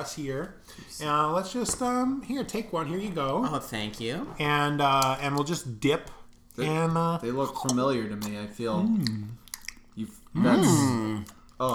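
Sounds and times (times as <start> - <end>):
speech: 0.0 - 9.4, 10.0 - 11.7
crunchy peanut-oil fried food dipped in remoulade being chewed: 0.3 - 11.7
eater humming appreciatively: 8.7 - 9.4, 10.4 - 11.3.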